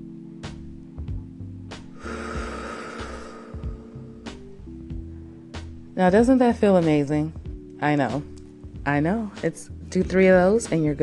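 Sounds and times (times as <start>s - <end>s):
steady low music: 0.0s - 11.0s
deep inhale during a relaxation breathing exercise: 1.9s - 5.6s
speech: 6.0s - 11.0s.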